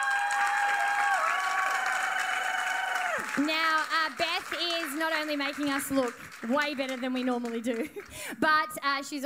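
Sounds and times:
live audience cheering and whooping: 0.0 - 3.5
live audience applauding: 0.0 - 8.4
speech: 3.4 - 9.2.

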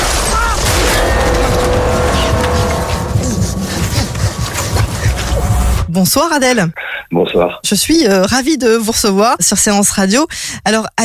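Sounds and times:
car engine revving as the car starts and pulls away: 0.0 - 5.9
speech: 6.0 - 11.0.

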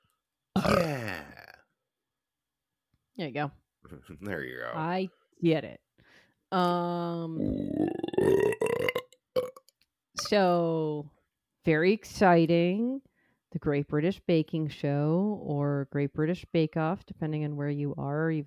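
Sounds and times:
person burping: 0.5 - 1.8, 7.4 - 9.7
speech: 0.7 - 1.2, 3.2 - 9.0, 10.2 - 18.4.

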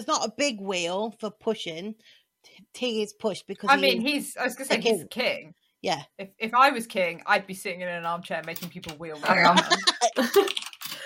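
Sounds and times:
speech: 0.0 - 10.7
laughter: 9.2 - 10.6
computer keyboard typing: 10.1 - 11.0.

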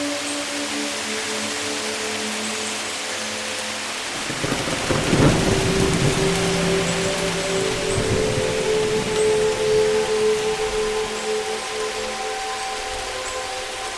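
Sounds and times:
steady rain: 0.0 - 13.9
sustained musical tones: 0.0 - 13.9
soft low rumble of thunder: 4.2 - 11.3.

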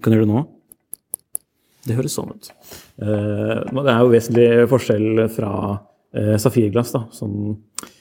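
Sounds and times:
speech: 0.0 - 0.5, 1.8 - 7.9
fingernail tapping the plexiglass crystal of a 1979 model 1680 watch: 0.7 - 1.5.

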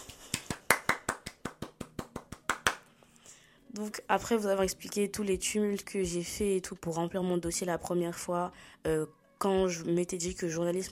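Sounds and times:
sharp hand claps: 0.0 - 2.9
speech: 3.8 - 10.9.

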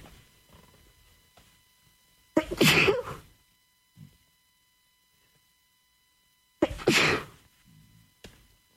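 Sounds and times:
speech: 2.4 - 3.0
person sneezing: 2.4 - 3.3, 6.6 - 7.4.

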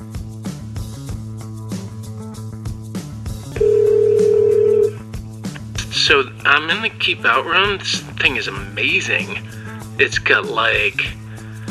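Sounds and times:
telephone ringing on the line: 3.6 - 5.0
speech: 6.1 - 11.2.

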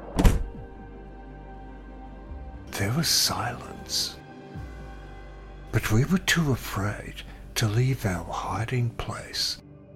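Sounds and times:
front door slamming shut: 0.0 - 0.7
speech: 2.8 - 4.2, 5.8 - 9.6.

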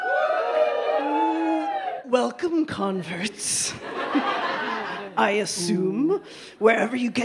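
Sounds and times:
live crowd cheering and whooping: 0.0 - 2.1
speech: 2.1 - 4.4, 5.2 - 7.2
laughter: 3.8 - 5.3.

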